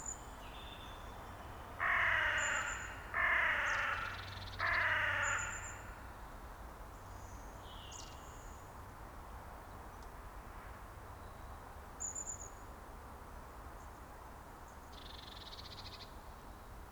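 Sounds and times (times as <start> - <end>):
carrion crow cawing: 1.8 - 6.1.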